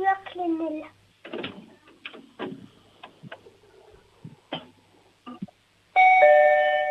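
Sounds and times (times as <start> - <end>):
knocks: 1.2 - 3.4
loud doorbell ringing: 6.0 - 6.8.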